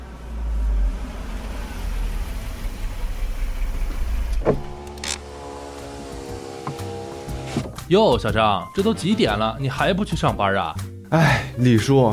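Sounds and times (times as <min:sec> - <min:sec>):
car engine with a dead battery cranking without catching: 0:00.9 - 0:07.9
speech: 0:07.9 - 0:12.1.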